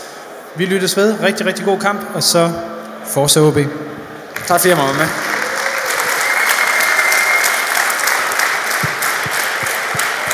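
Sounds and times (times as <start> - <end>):
speech: 0.6 - 5.2
dense audience applause with many hands clapping: 4.3 - 10.3.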